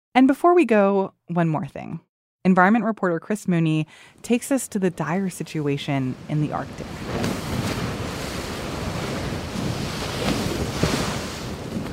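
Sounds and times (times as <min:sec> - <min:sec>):
speech: 0:00.2 - 0:07.4
gusty rushing: 0:05.8 - 0:11.9
Canadian research icebreaker grinding through Arctic sea ice in the Northwest Passage: 0:07.0 - 0:11.9.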